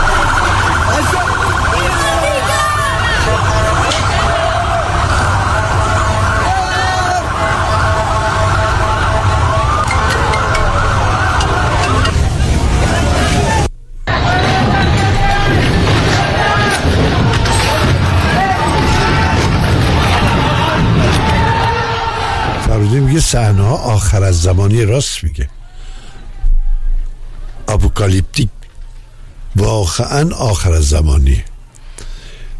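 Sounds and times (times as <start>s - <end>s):
wailing sirens: 0.0s - 23.0s
rioting crowd shouting in the street: 0.0s - 23.2s
speech: 23.4s - 25.6s, 27.7s - 28.6s, 29.5s - 31.5s.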